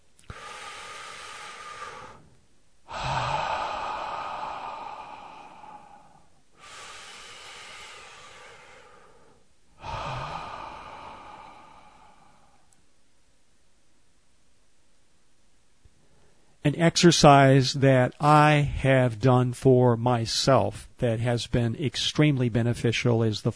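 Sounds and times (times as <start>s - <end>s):
slow effortless breathing during a relaxation exercise: 0.2s - 12.8s
speech: 16.7s - 23.5s.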